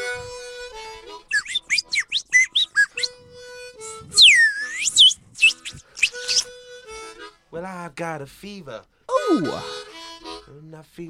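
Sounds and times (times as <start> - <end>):
slide whistle: 1.3 - 3.2, 4.1 - 6.5
speech: 7.9 - 9.8, 10.5 - 11.0.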